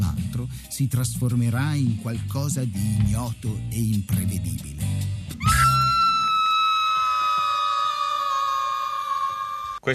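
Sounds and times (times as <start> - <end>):
speech: 0.4 - 5.0
loud sustained high piercing scream in a film clip: 5.4 - 9.8.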